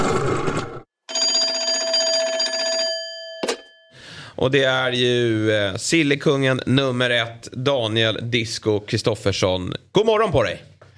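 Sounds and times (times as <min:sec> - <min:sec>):
telephone ringing with a trilling bell tone: 0:01.0 - 0:04.0
speech: 0:04.4 - 0:10.7.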